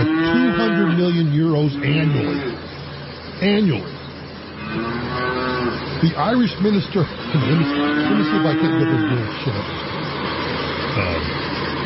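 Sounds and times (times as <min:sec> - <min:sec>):
cattle mooing in Ireland: 0:00.0 - 0:02.7, 0:04.6 - 0:06.1, 0:07.2 - 0:09.5
noise: 0:00.0 - 0:11.8
speech: 0:01.6 - 0:02.5, 0:03.4 - 0:04.0, 0:06.0 - 0:09.9, 0:11.0 - 0:11.5
laughter: 0:06.0 - 0:09.8.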